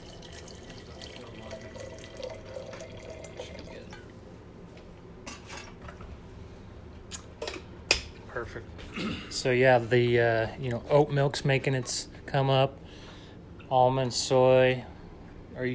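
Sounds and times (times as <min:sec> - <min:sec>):
water running from a tap into a container: 0:00.0 - 0:04.1
speech: 0:08.4 - 0:12.8, 0:13.7 - 0:14.9, 0:15.6 - 0:15.7.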